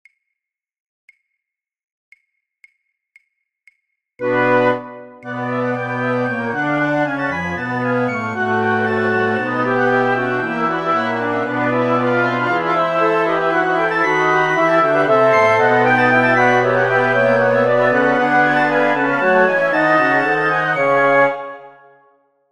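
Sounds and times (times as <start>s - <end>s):
flute orchestra playing all parts of a classical passion: 4.2s - 22.0s.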